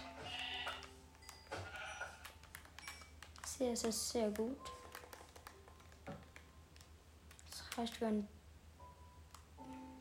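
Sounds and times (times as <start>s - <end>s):
sheep bleating in a video game: 0.1s - 0.8s
speech: 3.6s - 4.8s, 7.8s - 8.4s.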